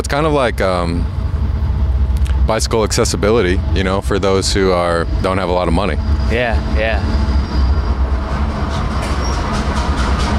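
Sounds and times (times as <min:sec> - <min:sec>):
speech: 0:00.0 - 0:01.2, 0:02.5 - 0:07.3
train rumbling past: 0:00.0 - 0:10.3
faint metallic squeals from the train wheels: 0:04.5 - 0:10.3
train wheels clacking: 0:07.5 - 0:10.3.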